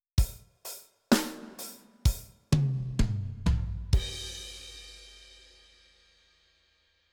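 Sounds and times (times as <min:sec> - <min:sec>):
drums playing in training: 0:00.2 - 0:05.2.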